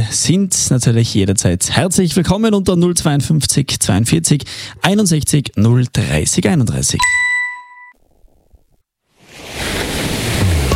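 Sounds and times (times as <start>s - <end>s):
speech: 0.1s - 7.4s
brief chime: 7.0s - 8.0s
ocean waves washing ashore: 9.1s - 10.7s.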